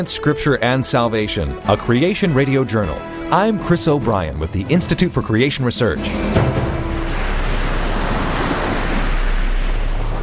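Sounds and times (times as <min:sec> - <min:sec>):
speech: 0:00.0 - 0:06.7
low rumble: 0:05.8 - 0:10.2
heavy rain pouring: 0:06.0 - 0:10.2.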